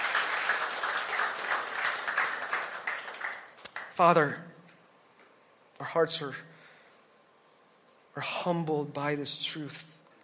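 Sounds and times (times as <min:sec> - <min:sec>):
audience applauding: 0:00.0 - 0:04.2
speech: 0:04.0 - 0:04.5, 0:05.8 - 0:06.5, 0:08.2 - 0:09.9.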